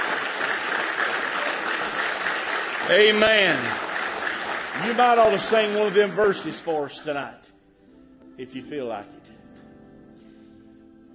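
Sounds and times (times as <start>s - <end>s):
crowd clapping: 0.0s - 7.1s
speech: 2.9s - 3.8s, 4.8s - 7.5s, 8.4s - 9.4s.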